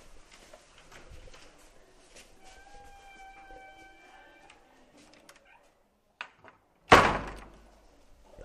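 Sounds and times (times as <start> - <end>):
door hinges creaking: 2.5 - 5.7
door swinging and knocking with a thud: 6.9 - 7.6.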